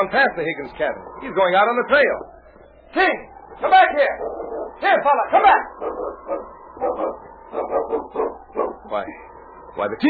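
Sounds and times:
speech: 0:00.0 - 0:10.0
dog barking in sharp yaps: 0:04.1 - 0:08.9.

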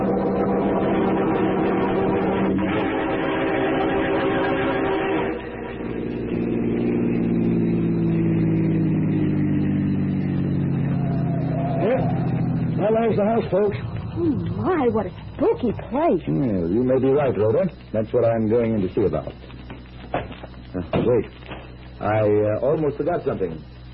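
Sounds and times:
car engine accelerating: 0:00.0 - 0:15.5
speech: 0:13.1 - 0:19.5, 0:21.1 - 0:21.4, 0:22.0 - 0:23.7.

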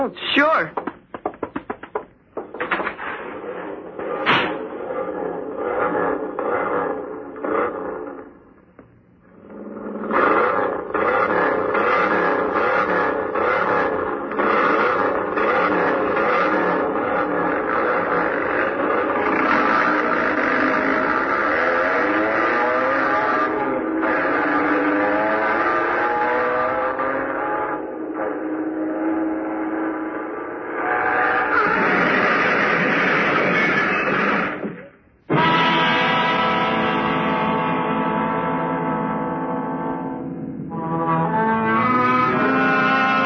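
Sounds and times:
speech: 0:00.0 - 0:00.9
racing car engines roaring as the cars race over a bridge: 0:03.4 - 0:43.2.

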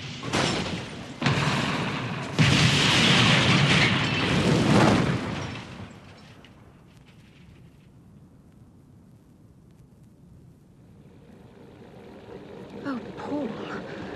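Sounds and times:
car smashing and tumbling over: 0:00.2 - 0:06.5
faint voice: 0:12.8 - 0:14.1.

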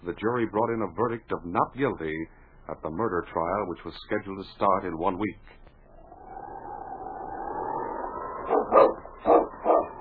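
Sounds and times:
speech: 0:00.0 - 0:05.6
steady droning sound: 0:05.8 - 0:09.9
team of sled huskies barking: 0:08.4 - 0:09.9.

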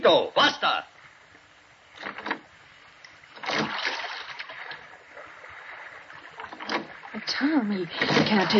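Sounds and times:
speech: 0:00.0 - 0:00.9, 0:07.4 - 0:08.5
steady watery background: 0:00.0 - 0:08.5
oars rowing a boat through water: 0:03.2 - 0:08.5.

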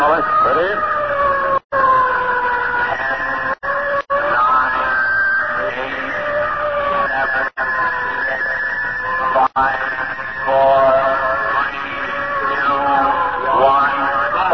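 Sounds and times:
fire warning siren wailing before a bomb test firing: 0:00.0 - 0:14.5.

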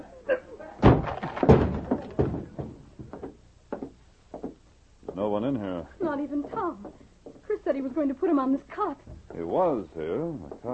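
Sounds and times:
door knocking and rattling as it gives way: 0:00.8 - 0:04.6
speech: 0:05.4 - 0:07.0, 0:07.7 - 0:10.7.

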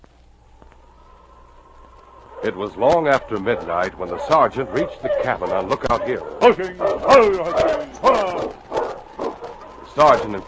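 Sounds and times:
dogs barking at a hillside cabin: 0:02.3 - 0:10.4
speech: 0:02.4 - 0:08.6, 0:10.0 - 0:10.4.

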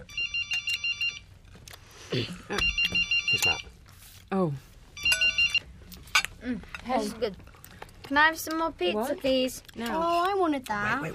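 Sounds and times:
mobile phone ringing with a bright electronic tone: 0:00.0 - 0:01.3, 0:02.6 - 0:03.8, 0:05.0 - 0:05.7
faint low hum: 0:00.0 - 0:11.1
speech: 0:02.1 - 0:03.7, 0:04.3 - 0:04.7, 0:06.4 - 0:07.5, 0:08.1 - 0:11.1.

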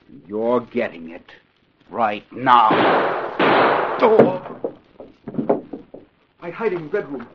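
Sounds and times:
speech: 0:00.3 - 0:04.6, 0:06.5 - 0:07.3
gunshot: 0:02.6 - 0:04.8
faint knocks: 0:04.0 - 0:07.3.

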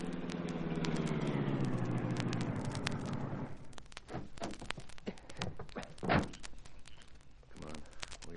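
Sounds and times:
car engine humming as the car pulls over and stops: 0:00.0 - 0:04.5
scattered clicks: 0:00.0 - 0:08.3.

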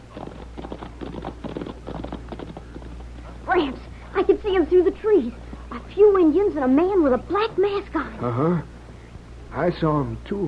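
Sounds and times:
horse hooves clip-clopping: 0:00.0 - 0:03.4
low constant hum: 0:00.0 - 0:10.4
speech: 0:03.6 - 0:08.7, 0:09.5 - 0:10.4.

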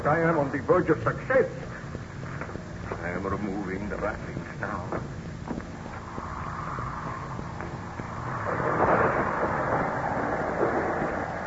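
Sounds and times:
speech: 0:00.0 - 0:01.7, 0:03.2 - 0:05.1
rolling thunder in a thunderstorm: 0:06.4 - 0:11.4.

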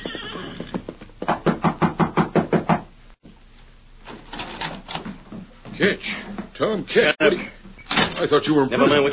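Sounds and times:
knocking on the wooden rear door of a cafe: 0:01.2 - 0:02.9
speech: 0:05.8 - 0:07.6, 0:08.2 - 0:09.1.

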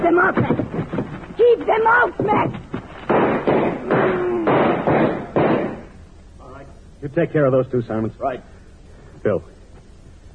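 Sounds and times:
speech: 0:00.0 - 0:00.5, 0:01.6 - 0:02.6, 0:07.0 - 0:08.5, 0:09.2 - 0:09.6
heavy pounding on a door: 0:02.2 - 0:05.9.

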